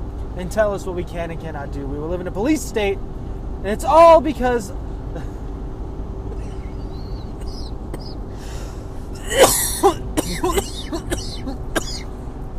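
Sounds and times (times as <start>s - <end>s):
steady low hum: 0.0s - 12.5s
speech: 0.4s - 5.4s, 9.3s - 11.6s
person coughing hard: 7.3s - 8.2s, 9.2s - 12.1s.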